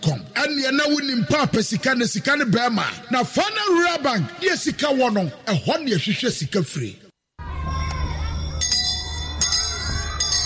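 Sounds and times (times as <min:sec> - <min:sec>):
speech: 0:00.4 - 0:07.0
school bells ringing: 0:08.1 - 0:10.4.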